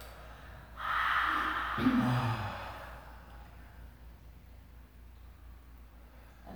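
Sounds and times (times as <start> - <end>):
people yawning: 0.8 - 3.3
speech: 1.8 - 2.4.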